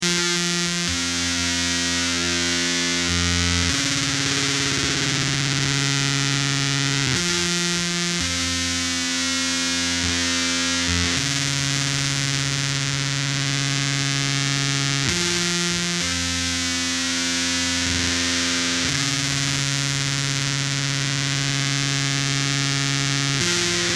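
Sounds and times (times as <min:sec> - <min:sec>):
fuzz guitar triad: 0:00.0 - 0:23.9.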